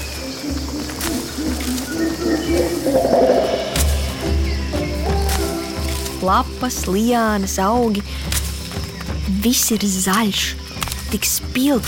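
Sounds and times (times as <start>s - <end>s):
elephant rumble: 0.0s - 6.2s
steady jungle insect hum: 0.0s - 11.8s
tropical birds calling and chirping in a jungle: 0.0s - 11.8s
speech: 6.2s - 8.2s, 9.4s - 11.8s.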